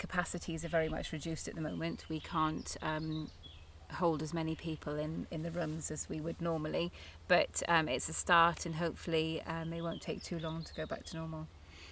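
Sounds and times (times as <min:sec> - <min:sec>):
speech: 0:00.1 - 0:11.6
birds chirping by a lake: 0:00.2 - 0:05.5, 0:08.5 - 0:11.8.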